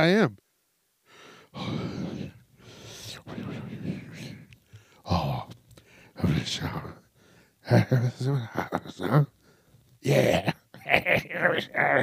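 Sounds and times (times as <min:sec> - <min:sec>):
speech: 0:00.0 - 0:00.4, 0:06.2 - 0:07.0, 0:07.7 - 0:09.4, 0:10.0 - 0:12.0
heavy breathing into a microphone: 0:01.0 - 0:05.2, 0:05.8 - 0:06.2, 0:07.0 - 0:07.6, 0:09.4 - 0:09.8.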